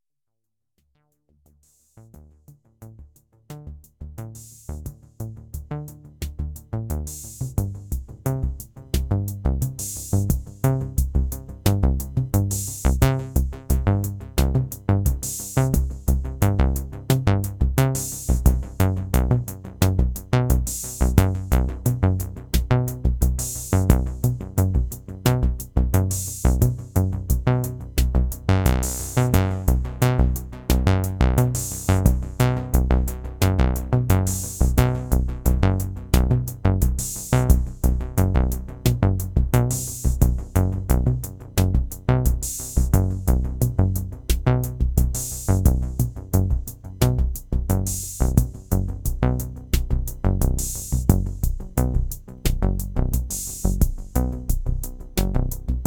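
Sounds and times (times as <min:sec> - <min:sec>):
TR808 drum machine simple sequence: 0:03.6 - 0:55.8.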